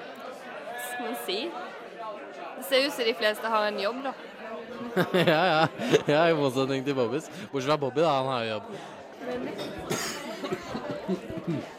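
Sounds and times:
speech: 1.0s - 11.7s
laughter: 4.7s - 6.5s, 9.5s - 11.7s
person coughing: 9.8s - 10.4s, 11.1s - 11.7s.

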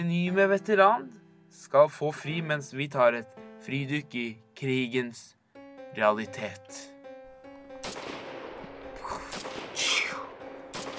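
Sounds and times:
speech: 0.0s - 6.9s
heavy gunfire in sharp bursts: 7.8s - 10.9s.

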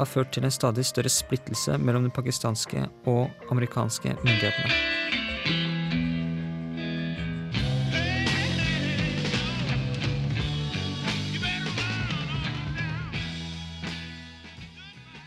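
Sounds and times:
speech: 0.0s - 5.0s
bending slightly distorted electric guitar lines: 4.2s - 15.2s
driving bass and drum groove: 7.3s - 15.2s.

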